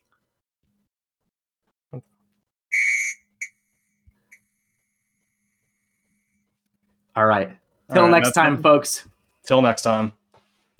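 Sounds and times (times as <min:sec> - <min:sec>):
speech: 0:01.9 - 0:02.2, 0:07.2 - 0:10.2
loud shrill whistle blast: 0:02.7 - 0:03.7.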